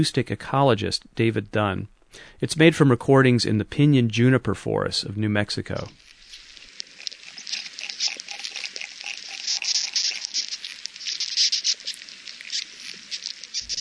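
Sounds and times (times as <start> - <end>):
speech: 0.0 - 6.0
bark beetles clicking inside a pinyon pine: 5.7 - 13.7.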